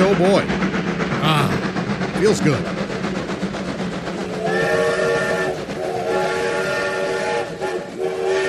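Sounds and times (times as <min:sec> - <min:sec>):
train rumbling along: 0:00.0 - 0:08.4
speech: 0:00.1 - 0:00.6, 0:01.2 - 0:02.8
train whistle blowing: 0:04.3 - 0:08.4.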